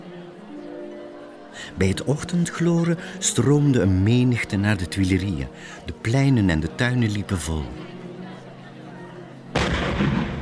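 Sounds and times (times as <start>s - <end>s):
speech: 1.6s - 8.0s
cannon blast: 9.6s - 10.4s.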